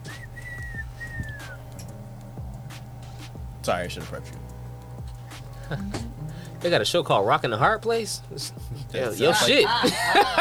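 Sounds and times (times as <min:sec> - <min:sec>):
whistle being blown: 0:00.0 - 0:01.9
low hum: 0:00.0 - 0:10.3
speech: 0:03.6 - 0:04.5, 0:05.7 - 0:10.3
laughter: 0:05.6 - 0:06.2, 0:08.8 - 0:10.3.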